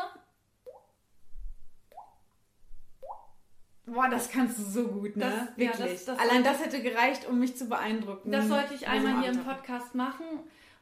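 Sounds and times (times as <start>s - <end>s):
voice imitating water dripping with mouth clicks: 0.6s - 0.9s, 1.8s - 2.3s, 3.0s - 3.4s
speech: 3.9s - 10.7s.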